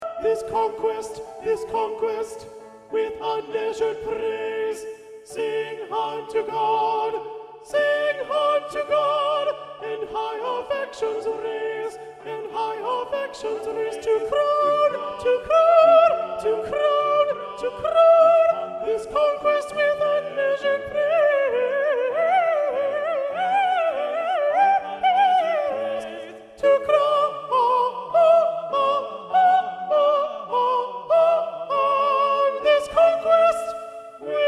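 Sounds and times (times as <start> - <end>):
soprano singing: 0.0 - 34.4.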